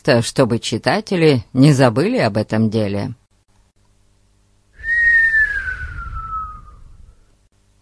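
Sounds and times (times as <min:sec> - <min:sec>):
speech: 0:00.0 - 0:03.2
person whistling in surprise: 0:04.8 - 0:07.0
faint low rumble: 0:04.8 - 0:07.5.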